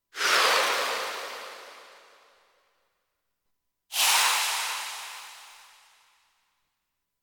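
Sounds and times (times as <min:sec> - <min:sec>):
steam sweep: 0:00.2 - 0:02.2, 0:03.9 - 0:05.8.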